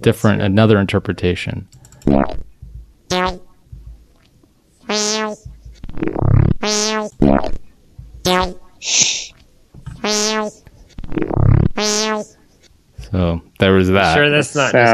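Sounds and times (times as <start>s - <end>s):
speech: 0.0s - 2.5s, 4.9s - 7.6s, 8.2s - 9.2s, 10.0s - 12.4s, 13.1s - 14.9s
sonified gravitational waves of colliding black holes as rising buzzy harmonic chirps: 3.1s - 3.9s, 4.9s - 7.6s, 8.2s - 9.4s, 10.0s - 12.4s.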